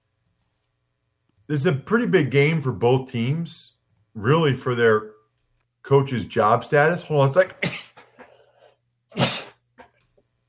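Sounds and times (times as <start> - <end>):
speech: 1.5 - 5.2, 5.8 - 7.8
loud sneeze: 9.1 - 9.6.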